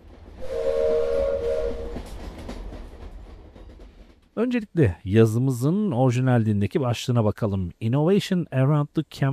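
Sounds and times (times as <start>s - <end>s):
express train rumbling past at night: 0.0s - 5.0s
train whistle: 0.4s - 2.3s
speech: 4.4s - 9.3s.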